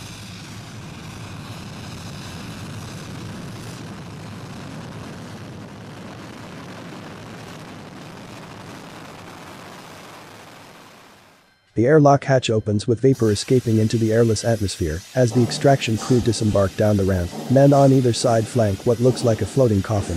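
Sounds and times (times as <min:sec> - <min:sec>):
speech: 0:11.8 - 0:20.1
large elongated bronze metal spacecraft landing thrusters roaring in a mining depot settlement: 0:14.3 - 0:20.1.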